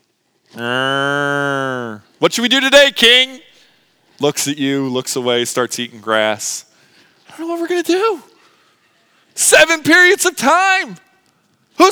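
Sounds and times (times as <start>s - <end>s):
speech: 0.6s - 1.0s, 2.2s - 3.4s, 4.2s - 6.7s, 7.3s - 8.3s, 9.4s - 11.0s
voice imitating a cow mooing: 0.6s - 2.2s.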